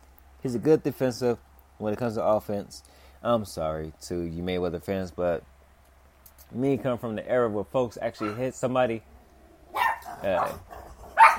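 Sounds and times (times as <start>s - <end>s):
speech: 0.4s - 5.5s, 6.5s - 9.1s, 10.2s - 10.7s
puppies barking: 8.2s - 8.5s, 9.7s - 11.3s.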